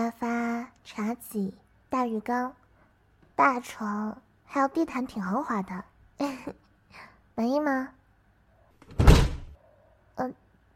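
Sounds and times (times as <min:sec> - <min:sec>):
speech: 0:00.9 - 0:02.6, 0:03.4 - 0:08.0, 0:10.2 - 0:10.4
hotel room door pushed shut with a loud thud: 0:08.8 - 0:09.6.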